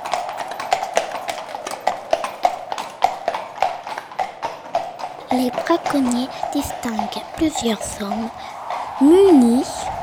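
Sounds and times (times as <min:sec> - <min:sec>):
horse-drawn carriage hooves clopping at a walking pace: 0:00.0 - 0:10.0
speech: 0:05.3 - 0:10.0.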